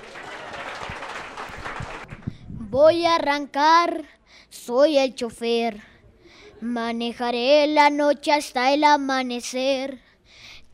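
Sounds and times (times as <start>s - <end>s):
audience applause at a live music performance: 0.0s - 2.3s
speech: 2.7s - 5.9s, 6.6s - 10.7s.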